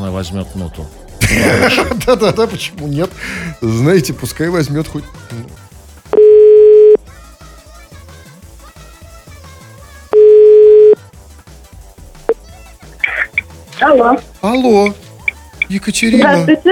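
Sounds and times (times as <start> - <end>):
quiet music: 0.0 - 16.6
speech: 0.1 - 5.6, 14.0 - 15.0, 15.7 - 16.6
laughter: 1.2 - 2.8
telephone ringback tones while placing a call: 6.2 - 7.0, 10.2 - 11.0.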